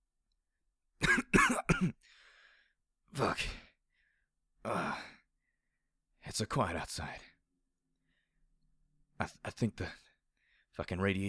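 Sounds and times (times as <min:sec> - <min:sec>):
man coughing: 0:01.0 - 0:02.0
speech: 0:01.8 - 0:02.2, 0:03.1 - 0:03.6, 0:04.7 - 0:05.1, 0:06.3 - 0:07.3, 0:09.2 - 0:10.0, 0:10.8 - 0:11.2.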